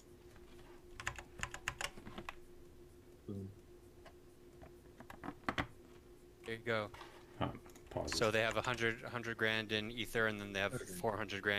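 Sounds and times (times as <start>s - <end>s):
low steady hum: 0.0s - 11.5s
fingers typing on a computer keyboard: 0.9s - 2.4s
speech: 3.3s - 3.6s, 6.5s - 11.5s.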